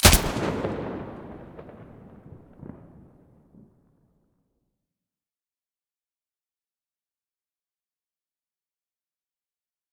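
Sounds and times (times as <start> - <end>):
rifle muzzle gunshots in stereo: 0.0 - 2.0.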